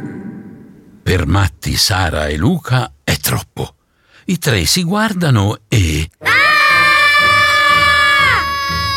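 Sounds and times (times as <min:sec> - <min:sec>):
speech: 0:01.2 - 0:06.3
children screaming in fright at a ghost: 0:06.2 - 0:08.9.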